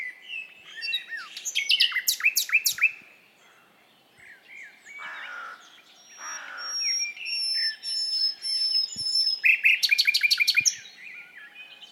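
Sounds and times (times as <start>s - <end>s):
Common nightingale Luscinia megarhynchos song: 0.0s - 11.9s.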